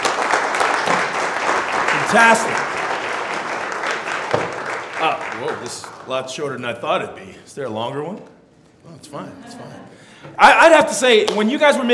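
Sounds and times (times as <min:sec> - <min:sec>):
crowd applauding in a room: 0:00.0 - 0:06.4
speech: 0:02.1 - 0:02.8, 0:05.0 - 0:11.9.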